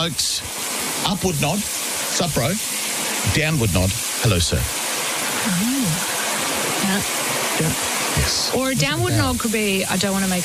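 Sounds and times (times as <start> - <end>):
speech: 0.0 - 4.8, 6.9 - 10.4
running shower water: 0.0 - 10.4
low vocal sounds: 3.3 - 4.7, 7.6 - 9.6.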